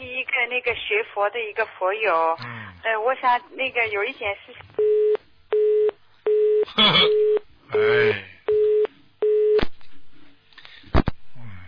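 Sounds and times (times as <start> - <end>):
speech: 0.5 - 4.6, 6.8 - 8.3
telephone busy tone after a dropped call: 4.8 - 7.9, 8.5 - 9.6.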